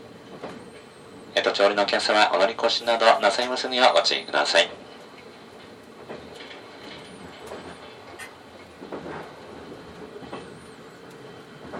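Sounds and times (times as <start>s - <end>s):
express train running on rails heard from inside the car: 0.0s - 11.7s
speech: 1.5s - 4.8s
train wheel clacks and thumps: 6.0s - 11.7s.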